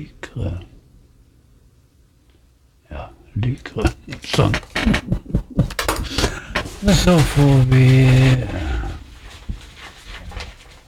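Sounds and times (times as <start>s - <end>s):
speech: 0.0s - 0.7s, 2.9s - 5.4s, 6.8s - 8.7s
paper rustling: 6.0s - 10.8s.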